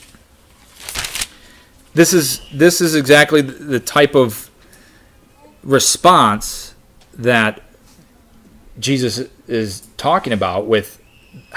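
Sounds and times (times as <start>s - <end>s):
Bible pages flipping during a sermon: 0.0s - 1.6s
speech: 2.0s - 4.4s, 5.6s - 7.6s, 8.8s - 11.5s.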